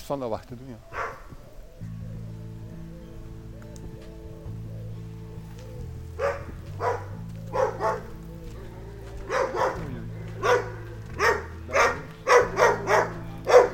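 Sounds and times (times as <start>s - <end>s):
speech: 0.1s - 1.0s
dog barking at the gate of an animal shelter: 0.8s - 1.4s, 6.2s - 13.7s.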